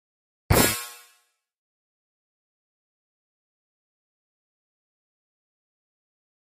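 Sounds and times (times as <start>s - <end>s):
electric impact hit with shimmer: 0.5s - 1.1s.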